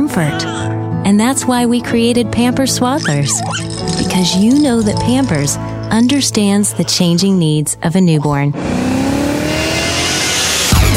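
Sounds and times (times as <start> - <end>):
speech: 0.2 - 8.9
new BMW with automatic transmission accelerating: 8.6 - 10.9.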